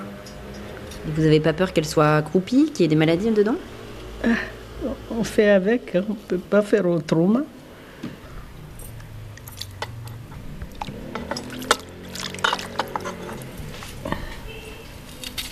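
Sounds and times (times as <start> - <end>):
low noise: 0.0 - 15.5
speech: 1.0 - 8.2
stored tap water poured from a container: 10.7 - 13.0.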